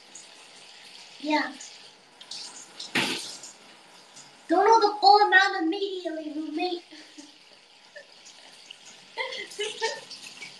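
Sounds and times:
water splashing in a bath: 0:00.0 - 0:05.6, 0:06.4 - 0:10.5
speech: 0:01.2 - 0:01.7, 0:04.5 - 0:07.2, 0:09.3 - 0:10.1.

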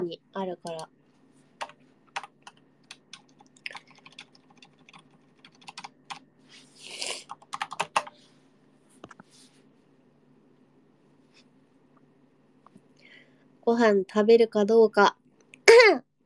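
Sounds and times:
low steady hum: 0:00.0 - 0:16.2
speech: 0:00.1 - 0:01.0, 0:13.7 - 0:15.2
computer keyboard typing: 0:00.5 - 0:00.9, 0:01.6 - 0:06.3, 0:07.3 - 0:08.2.

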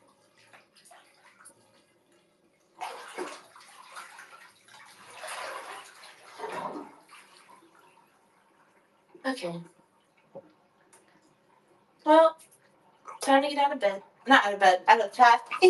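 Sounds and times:
water splashing while someone washes their face: 0:00.0 - 0:01.9, 0:02.7 - 0:08.5, 0:15.3 - 0:15.6
speech: 0:09.3 - 0:09.8, 0:13.3 - 0:15.6.

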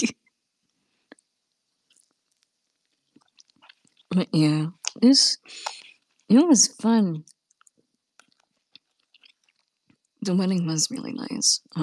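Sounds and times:
crunchy chewing: 0:01.8 - 0:04.1, 0:07.3 - 0:10.2
speech: 0:04.2 - 0:07.3, 0:10.2 - 0:11.8.

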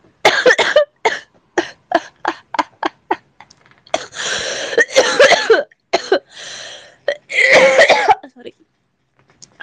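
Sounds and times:
person coughing in a fit with hacking spells: 0:00.3 - 0:03.2, 0:04.0 - 0:06.3, 0:07.3 - 0:08.2.

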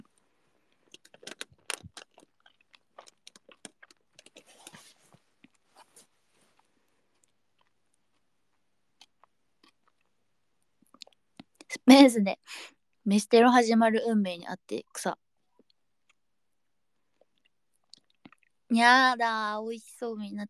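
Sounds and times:
gum chewing: 0:00.0 - 0:11.7, 0:17.0 - 0:18.7
speech: 0:11.9 - 0:15.2, 0:18.7 - 0:20.4.

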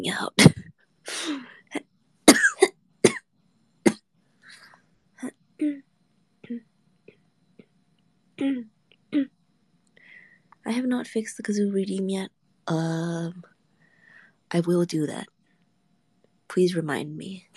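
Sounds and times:
speech: 0:00.0 - 0:01.8, 0:08.4 - 0:09.4, 0:10.7 - 0:13.5, 0:14.5 - 0:15.3, 0:16.5 - 0:17.5
person clearing throat: 0:02.3 - 0:03.2, 0:08.4 - 0:09.3.

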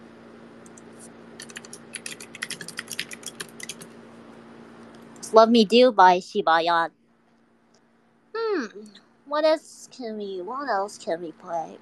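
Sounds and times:
typing on a computer keyboard: 0:01.4 - 0:03.9
speech: 0:05.3 - 0:07.0, 0:09.4 - 0:11.7.

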